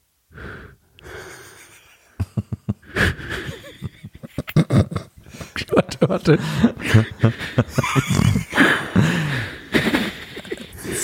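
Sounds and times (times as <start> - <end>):
person imitating a character's breathing with huffs and snorting gasps: 0.3 - 1.7, 2.8 - 4.0, 6.4 - 11.0
laughter: 1.3 - 11.0
speech: 5.8 - 9.1.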